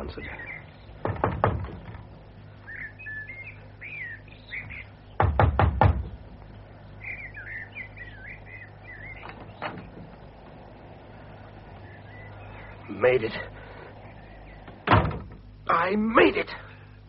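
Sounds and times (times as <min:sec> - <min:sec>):
speech: 0:00.0 - 0:00.5, 0:13.0 - 0:13.6, 0:15.9 - 0:16.6
birds chirping and twittering: 0:00.0 - 0:17.0
knocking on a wooden door: 0:01.0 - 0:02.0, 0:05.2 - 0:06.2.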